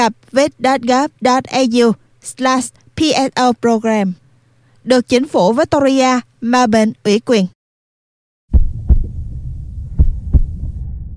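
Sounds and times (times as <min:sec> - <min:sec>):
speech: 0:00.0 - 0:04.2, 0:04.8 - 0:07.6
bus driver's heartbeat thumping: 0:08.5 - 0:11.1.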